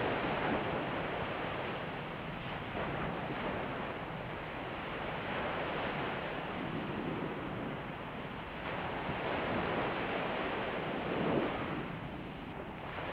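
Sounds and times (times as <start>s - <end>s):
faint breeze-like noise: 0.0s - 13.1s
gentle sea waves washing on a shore: 0.0s - 13.1s.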